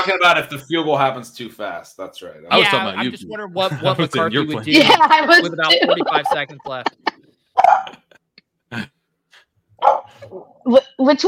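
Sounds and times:
speech: 0:00.0 - 0:08.0, 0:08.7 - 0:09.0, 0:09.8 - 0:11.2
laughter: 0:02.5 - 0:07.2, 0:07.8 - 0:08.2
dog barking: 0:07.6 - 0:08.0, 0:09.8 - 0:10.3.

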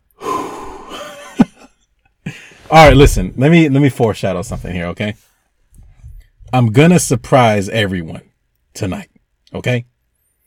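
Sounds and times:
deep breath from someone settling into an electronic reclining chair: 0:00.1 - 0:01.0
speech: 0:02.7 - 0:05.3, 0:06.5 - 0:09.9.

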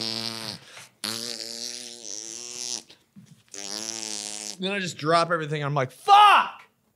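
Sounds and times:
loud buzzing fart: 0:00.0 - 0:04.7
speech: 0:04.6 - 0:06.5.

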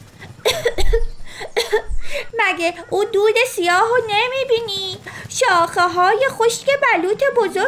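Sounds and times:
person coughing in harsh bursts: 0:00.4 - 0:02.3
speech: 0:01.7 - 0:07.6.

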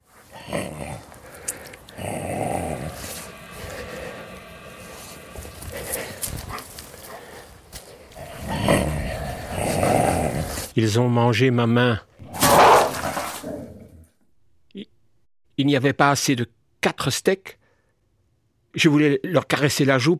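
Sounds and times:
several dogs growling: 0:00.1 - 0:10.8, 0:12.2 - 0:14.1
speech: 0:10.8 - 0:12.1, 0:15.6 - 0:17.6, 0:18.8 - 0:20.1.

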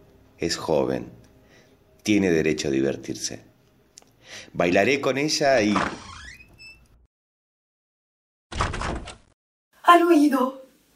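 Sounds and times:
speech: 0:00.4 - 0:01.2, 0:02.0 - 0:03.5, 0:04.3 - 0:06.1, 0:09.9 - 0:10.6
door hinge creaking with a rising squeal: 0:05.6 - 0:07.0
door shutting with a loud rattling clunk: 0:08.5 - 0:09.3.

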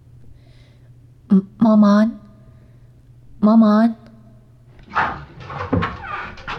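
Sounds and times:
speech: 0:01.3 - 0:02.2, 0:03.4 - 0:04.0
door creaking open: 0:04.7 - 0:06.5
dull wooden knocks and bumps: 0:04.8 - 0:06.5.

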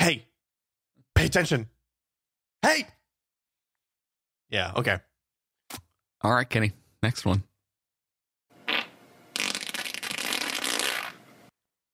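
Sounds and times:
speech: 0:00.1 - 0:00.3, 0:01.2 - 0:01.7, 0:02.6 - 0:03.0, 0:04.5 - 0:05.1, 0:05.7 - 0:07.5
person farting with a wet buzzy rasp: 0:08.6 - 0:11.2.

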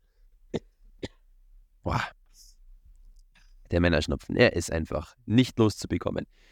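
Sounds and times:
person clearing throat: 0:00.5 - 0:01.2
speech: 0:03.7 - 0:06.5.

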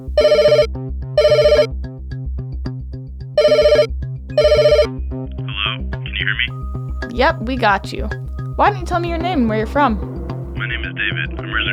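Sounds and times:
telephone ringtone announcing an incoming call: 0:00.0 - 0:01.7, 0:03.4 - 0:05.0
speech: 0:00.0 - 0:01.9, 0:07.2 - 0:11.7.

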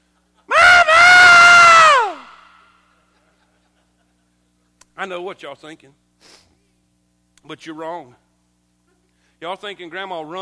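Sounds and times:
person imitating a blood-curdling scream: 0:00.5 - 0:02.7
laughter: 0:03.0 - 0:04.8
speech: 0:05.0 - 0:06.0, 0:07.4 - 0:08.2, 0:09.4 - 0:10.4.

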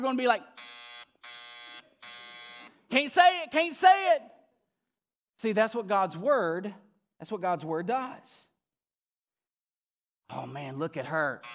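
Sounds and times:
speech: 0:00.0 - 0:00.8, 0:02.9 - 0:04.3, 0:05.4 - 0:08.5, 0:10.3 - 0:11.5
loud harsh game buzzer blasts: 0:00.5 - 0:02.9, 0:11.4 - 0:11.5.

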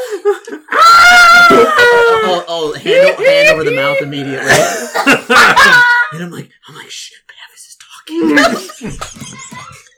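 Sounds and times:
speech: 0:00.2 - 0:09.3
person screaming imitating a character's shriek: 0:00.7 - 0:04.5
laughter: 0:01.4 - 0:06.2, 0:08.2 - 0:09.9.

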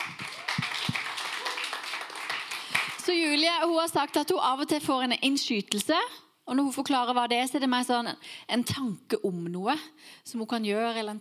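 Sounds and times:
small group clapping hands: 0:00.0 - 0:03.1
speech: 0:03.1 - 0:11.2.

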